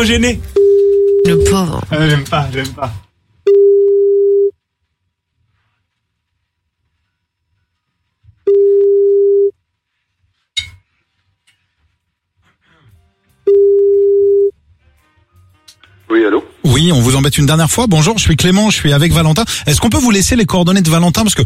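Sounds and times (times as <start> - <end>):
speech: 0.0 - 0.6, 1.2 - 3.0, 16.1 - 21.4
telephone ringing tone on an outgoing call: 0.6 - 1.5, 3.5 - 4.5, 8.5 - 9.5, 13.5 - 14.5.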